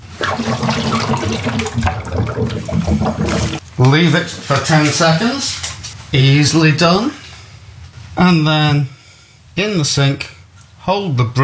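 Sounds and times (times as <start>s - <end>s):
sterilizing fluid pouring into a coffee machine brewing dock: 0.0s - 3.6s
speech: 0.4s - 7.2s, 8.2s - 9.0s, 9.6s - 11.4s.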